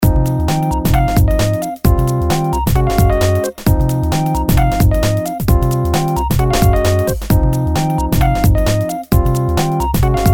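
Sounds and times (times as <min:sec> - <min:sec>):
simple background music loop: 0:00.0 - 0:10.3.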